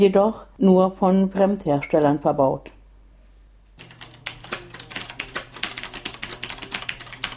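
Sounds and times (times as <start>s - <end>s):
speech: 0.0s - 2.8s
typing on a mechanical keyboard with clicky switches: 3.8s - 7.3s.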